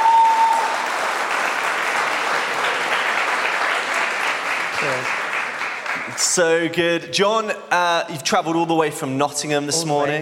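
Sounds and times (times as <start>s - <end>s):
dense applause from a sizeable audience: 0.0s - 6.7s
speech: 6.2s - 10.2s.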